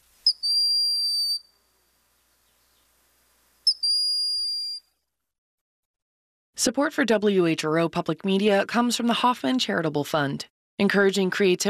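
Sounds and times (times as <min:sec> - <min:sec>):
broad-winged hawk plaintive whistled call: 0:00.2 - 0:01.5, 0:03.6 - 0:04.9
speech: 0:06.6 - 0:11.6.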